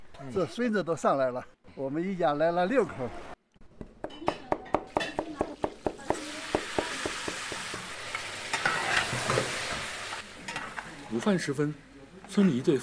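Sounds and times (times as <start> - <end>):
speech: 0.2 - 3.3, 11.2 - 12.8
food sizzling in a frying pan: 5.6 - 11.5
metal spatula scraping and clinking while stirring in a frying pan: 8.2 - 9.8.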